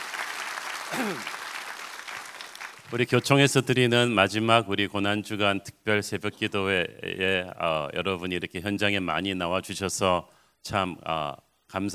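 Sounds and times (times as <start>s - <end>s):
congregation applause at a dawn prayer service in a church: 0.0s - 3.1s
speech: 0.9s - 1.4s, 2.9s - 11.9s.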